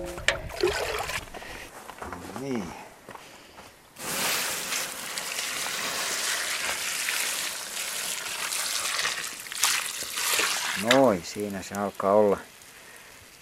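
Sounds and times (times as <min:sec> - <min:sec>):
speech: 0:02.4 - 0:02.8, 0:10.8 - 0:12.5
water poured onto a campfire hissing: 0:04.0 - 0:13.4.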